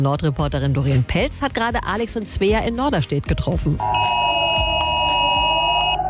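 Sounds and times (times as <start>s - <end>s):
speech: 0.0s - 4.3s
emergency alert tone from many mobile phones in Norderstedt Germany: 3.8s - 6.0s.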